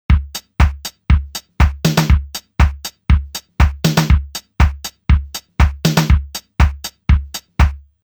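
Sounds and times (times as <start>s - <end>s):
Casio RZ1 drum machine loop: 0.0s - 7.8s.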